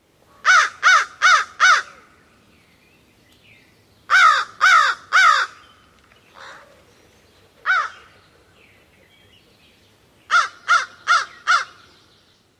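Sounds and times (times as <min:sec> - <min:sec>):
bird cawing: 0:00.3 - 0:02.2, 0:04.1 - 0:06.8, 0:07.6 - 0:08.2, 0:10.3 - 0:11.9.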